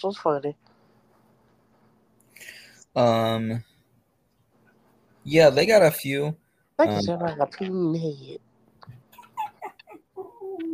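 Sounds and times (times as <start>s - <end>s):
speech: 0.0s - 0.7s, 2.4s - 3.7s, 5.3s - 8.5s
dog giving a drawn-out whine: 9.1s - 10.7s.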